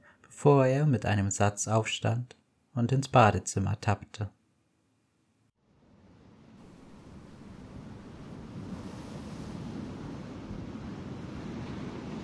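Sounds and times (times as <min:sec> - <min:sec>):
speech: 0:00.4 - 0:04.4
rough wind at sea: 0:06.6 - 0:12.2
waves churning at sea: 0:06.6 - 0:12.2.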